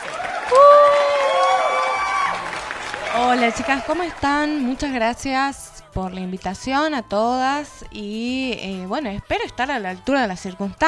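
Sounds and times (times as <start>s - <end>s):
long high-pitched whoop: 0.0s - 3.8s
crowd applauding and cheering: 0.0s - 4.8s
speech: 3.3s - 10.8s.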